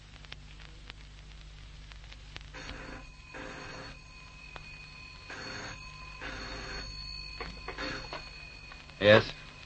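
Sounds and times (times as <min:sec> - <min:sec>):
steady hum and hiss: 0:00.0 - 0:09.6
old-fashioned telephone bell ringing: 0:02.6 - 0:09.5
speech: 0:09.0 - 0:09.4.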